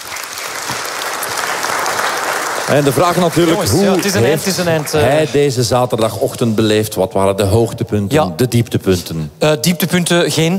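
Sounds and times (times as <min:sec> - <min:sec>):
audience applause: 0:00.0 - 0:05.7
speech: 0:02.7 - 0:10.5.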